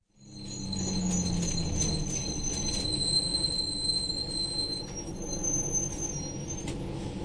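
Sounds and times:
bus squeaking at bus stop: 0:00.0 - 0:07.2.

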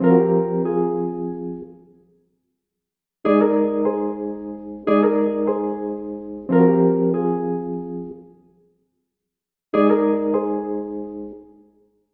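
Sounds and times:
plaintive electric piano chops: 0:00.0 - 0:01.8, 0:03.3 - 0:08.4, 0:09.8 - 0:11.6.

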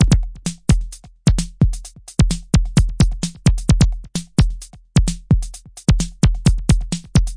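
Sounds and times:
analog drum loops and breaks: 0:00.0 - 0:07.3.

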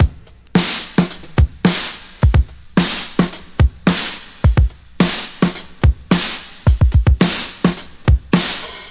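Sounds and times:
classic drum break loop: 0:00.0 - 0:08.8.

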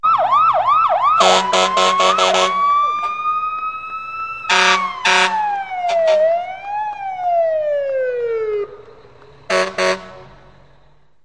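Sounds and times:
fire truck sirens: 0:00.0 - 0:11.2
fire truck horns: 0:01.0 - 0:06.5, 0:09.4 - 0:11.0.

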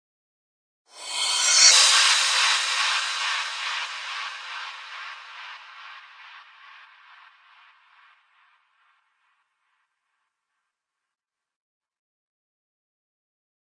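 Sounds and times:
two-way crash cymbal drum single hit: 0:00.9 - 0:08.5.

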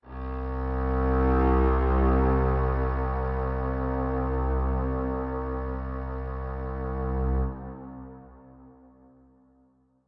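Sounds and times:
reverberant solo cello: 0:00.1 - 0:08.7.

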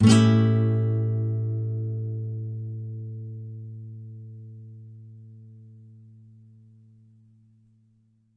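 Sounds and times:
A7 chord on a nylon guitar: 0:00.0 - 0:07.8.

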